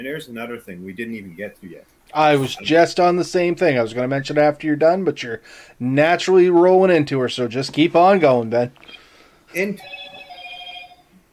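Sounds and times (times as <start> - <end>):
speech: 0.0 - 10.0
phone ringing with a high electronic tone: 8.8 - 11.2.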